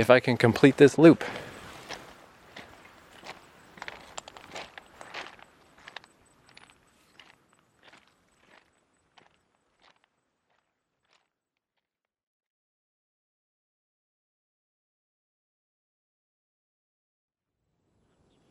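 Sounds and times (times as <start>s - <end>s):
speech: 0.0s - 1.5s
footsteps walking on stones on a walkway loop: 1.3s - 11.3s.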